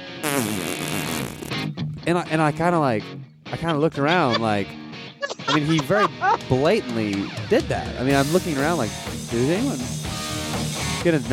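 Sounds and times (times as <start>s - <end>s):
person blowing a raspberry mimicking a fart against a chair: 0.2s - 1.5s
speech: 0.4s - 0.8s, 2.1s - 4.8s, 5.5s - 10.0s, 11.0s - 11.3s
laughter: 3.6s - 7.2s.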